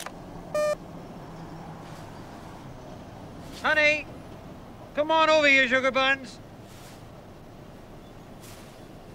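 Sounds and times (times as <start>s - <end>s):
short electronic beep: 0.6s - 0.8s
speech: 3.6s - 4.1s, 5.0s - 6.4s.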